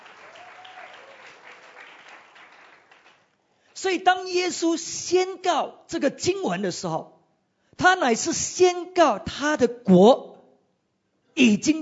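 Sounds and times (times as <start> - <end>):
group of people applauding themselves: 0.0 - 3.4
speech: 3.8 - 7.2, 7.8 - 10.3, 11.4 - 11.8.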